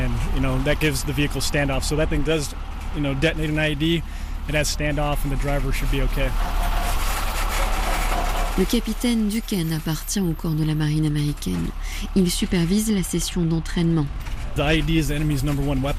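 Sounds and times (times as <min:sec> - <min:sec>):
military truck engine idling: 0:00.0 - 0:15.9
speech: 0:00.4 - 0:06.8, 0:08.6 - 0:15.9.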